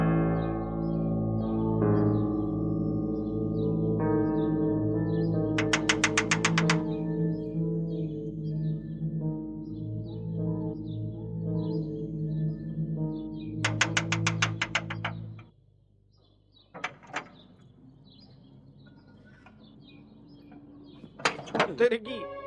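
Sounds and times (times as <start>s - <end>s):
chirpy tones: 0.0s - 22.4s
door shutting: 5.6s - 7.0s, 13.6s - 15.5s, 16.7s - 17.8s, 20.6s - 21.9s.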